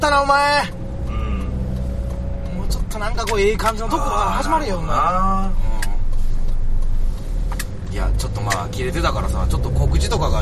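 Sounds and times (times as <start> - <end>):
speech: 0.0 - 0.8, 2.9 - 5.7, 7.9 - 10.4
low engine and road rumble inside a moving car: 0.0 - 10.4.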